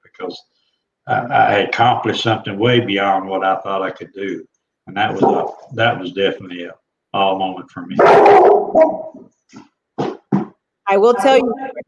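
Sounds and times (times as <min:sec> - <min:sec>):
speech: 0:00.2 - 0:09.7, 0:10.9 - 0:11.8
dog barking excitedly: 0:08.0 - 0:09.2.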